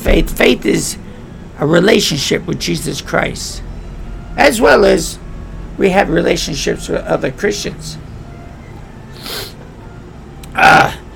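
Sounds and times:
speech: 0.1s - 1.0s, 1.6s - 3.6s, 4.4s - 5.2s, 5.8s - 8.0s
soft breathy intake of a person with a cold: 9.1s - 9.6s
person with a cold sneezing: 9.2s - 9.6s.

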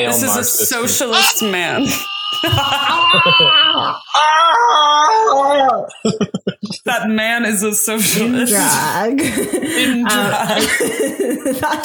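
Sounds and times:
laughter: 0.0s - 4.2s, 5.8s - 7.0s, 8.0s - 11.8s
speech: 0.0s - 11.8s
man imitating a scream: 1.1s - 6.0s.

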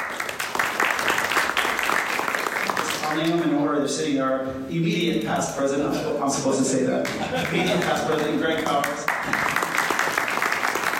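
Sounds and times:
crowd applauding: 0.0s - 3.4s, 7.0s - 10.9s
speech: 3.1s - 9.6s
laughter: 5.9s - 8.6s.

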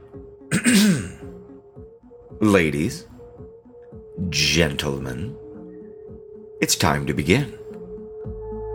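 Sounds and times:
man clearing his throat: 0.5s - 1.4s
speech: 2.4s - 3.1s, 4.3s - 5.4s, 6.6s - 7.6s.

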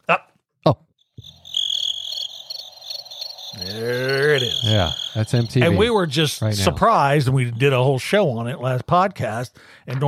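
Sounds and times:
speech: 0.1s - 0.8s, 3.8s - 10.0s
chorus of crickets chirping: 1.0s - 8.0s
brief voice fragments: 3.5s - 8.9s.

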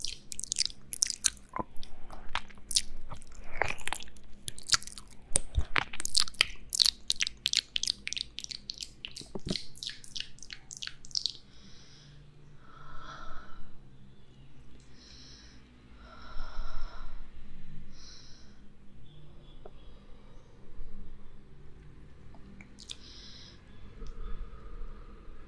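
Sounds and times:
wet mouth sounds and ear-eating noises: 0.0s - 11.5s, 22.5s - 23.2s
low steady hum: 0.0s - 25.4s.

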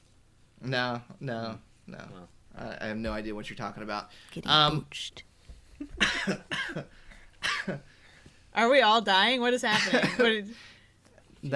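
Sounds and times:
speech: 0.6s - 7.9s, 8.6s - 10.8s
hacking coughing fit caused by eating an almond: 6.0s - 7.8s, 9.9s - 10.3s.

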